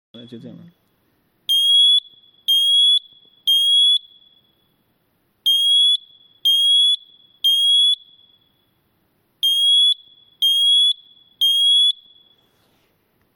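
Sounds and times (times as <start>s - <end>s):
alarm: 1.5s - 4.8s, 5.4s - 8.8s, 9.4s - 12.5s.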